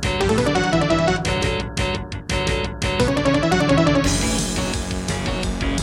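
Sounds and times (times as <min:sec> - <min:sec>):
intro music on Serdaco Crystal Blaster C1: 0:00.2 - 0:01.8, 0:03.0 - 0:05.7.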